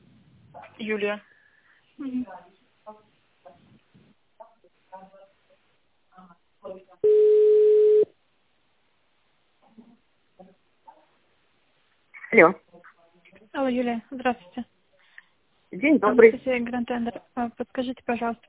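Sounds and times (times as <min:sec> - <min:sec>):
speech: 0:00.8 - 0:01.3, 0:02.0 - 0:03.6, 0:12.3 - 0:12.6, 0:13.6 - 0:14.7, 0:15.7 - 0:18.4
telephone line tone while a call is transferred: 0:07.0 - 0:08.1.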